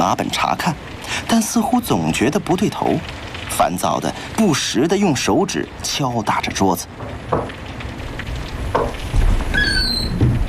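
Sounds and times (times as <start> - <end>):
speech: 0.0 - 7.6
squeaks of a door being pushed open: 9.5 - 10.4.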